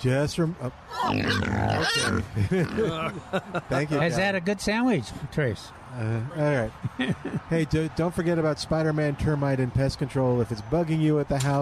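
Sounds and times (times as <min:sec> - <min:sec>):
speech: 0:00.0 - 0:11.5
pig grunting and squealing: 0:00.9 - 0:03.2
laughter: 0:01.0 - 0:04.2, 0:06.6 - 0:07.8.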